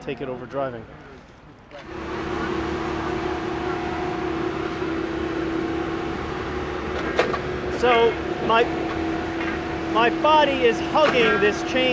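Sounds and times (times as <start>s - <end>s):
speech: 0.0s - 2.4s, 7.8s - 8.9s, 10.0s - 11.9s
heavy machinery placing a railroad tie with diesel drone: 1.8s - 11.9s.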